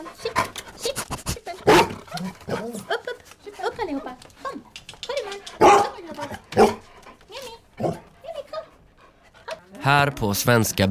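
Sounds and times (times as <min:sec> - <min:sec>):
several assistance dogs barking in offices: 0:01.6 - 0:02.9, 0:05.6 - 0:06.9, 0:07.8 - 0:08.1
speech: 0:09.9 - 0:10.8.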